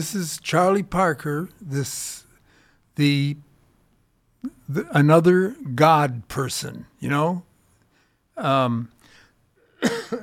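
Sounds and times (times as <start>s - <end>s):
speech: 0.0s - 2.2s, 3.0s - 3.5s, 4.4s - 7.5s, 8.4s - 9.0s
short sharp cough from dry air conditioning: 9.7s - 10.2s
throat clearing from dry air-conditioned air: 9.8s - 10.2s.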